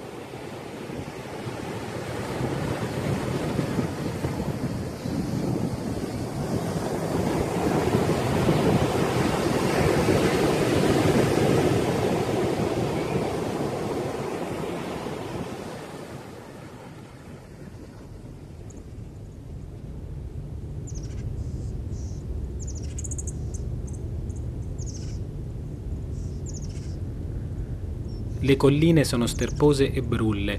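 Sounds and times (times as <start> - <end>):
ocean surf crashing on shore: 0.0 - 18.6, 28.4 - 30.5
wind: 0.0 - 30.5
speech: 28.5 - 30.5.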